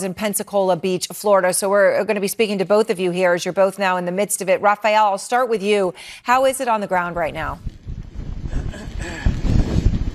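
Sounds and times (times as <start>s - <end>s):
speech: 0.0s - 7.8s
strong storm wind buffeting a microphone on Pensacola Beach, Florida: 7.0s - 10.1s
storm rain on Pensacola Beach, Florida: 7.7s - 10.1s.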